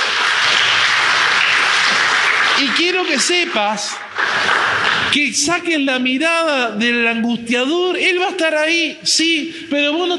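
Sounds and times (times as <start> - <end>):
large crowd applauding in praise of the Lord: 0.0 - 5.2
speech: 2.6 - 4.5, 5.1 - 10.1.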